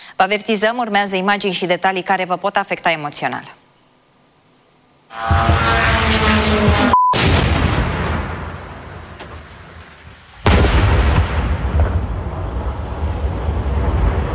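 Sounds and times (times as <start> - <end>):
speech: 0.2 - 3.6, 5.1 - 5.5
explosions during drone and missile attack: 5.3 - 14.3.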